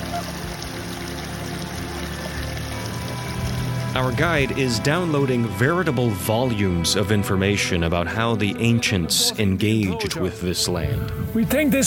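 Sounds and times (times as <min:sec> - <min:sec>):
mountain brook rushing and trickling: 0:00.0 - 0:07.0
speech: 0:04.0 - 0:11.8.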